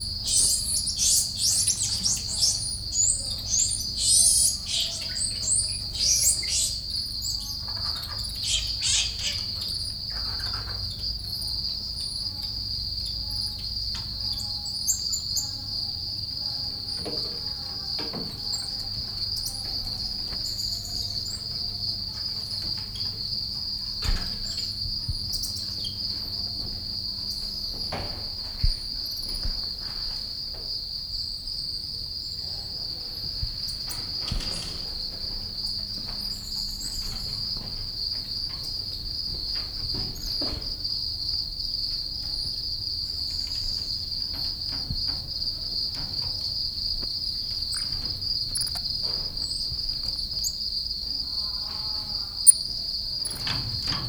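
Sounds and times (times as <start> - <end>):
house crickets chirping loudly: 0.0 - 54.0
golden-handed tamarin in a zoo: 0.2 - 9.6.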